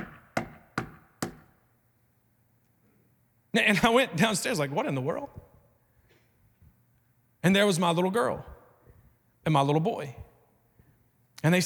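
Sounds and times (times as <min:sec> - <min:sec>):
knocking on a wooden door: 0:00.0 - 0:01.5
speech: 0:03.6 - 0:05.5, 0:07.4 - 0:08.5, 0:09.4 - 0:10.2, 0:11.4 - 0:11.6.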